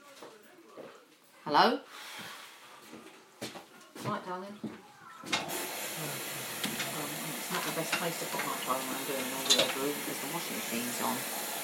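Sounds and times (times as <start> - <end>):
speech: 1.5 - 2.3, 4.0 - 6.3, 7.8 - 11.5
tumble dryer running with faint knocks: 5.5 - 11.6.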